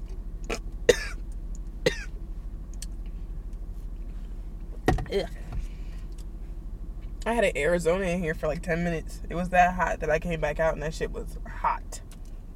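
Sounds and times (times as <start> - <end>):
steady low engine-like hum: 0.0 - 12.5
person coughing harshly: 0.5 - 1.2, 1.9 - 2.1
speech: 5.1 - 5.4, 7.2 - 11.8.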